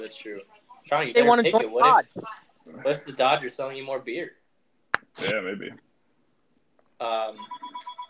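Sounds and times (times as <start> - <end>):
speech: 0.0 - 4.4, 5.2 - 5.9, 7.0 - 8.0
telephone ringing: 7.4 - 8.0.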